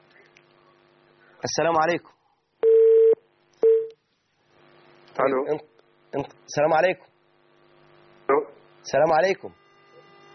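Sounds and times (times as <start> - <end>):
speech: 1.4 - 2.2, 5.2 - 7.1, 8.3 - 9.6
electronic telephone beeps as a call connects: 2.6 - 3.9.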